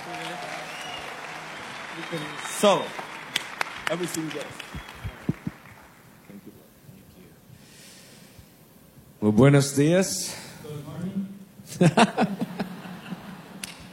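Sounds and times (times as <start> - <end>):
audience applauding: 0.0 - 6.5
speech: 2.0 - 3.1, 3.9 - 4.9, 9.3 - 10.4, 11.8 - 12.3
laughter: 11.7 - 13.9.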